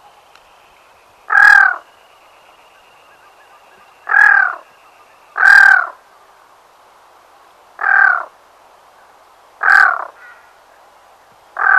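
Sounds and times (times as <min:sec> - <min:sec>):
Black-throated loon croaking calls: 0:01.3 - 0:06.0, 0:09.6 - 0:10.5, 0:11.6 - 0:11.7.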